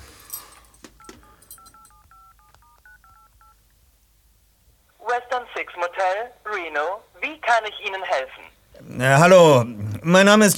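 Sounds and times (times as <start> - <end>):
dual-tone phone keypad beeps: 1.0 - 3.6
speech: 7.6 - 10.5.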